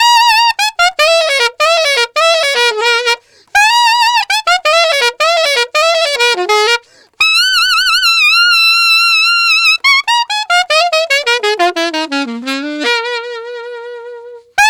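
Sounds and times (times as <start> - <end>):
alto saxophone jazz solo in B flat: 0.0 - 14.6.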